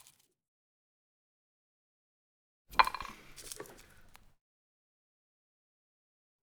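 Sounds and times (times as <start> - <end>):
cigarette crushed out in a metal ashtray: 2.7 - 4.3.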